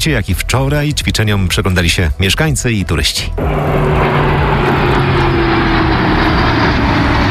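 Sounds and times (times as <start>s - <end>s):
speech: 0.0s - 4.4s
military fighter jets flying overhead: 3.3s - 7.2s.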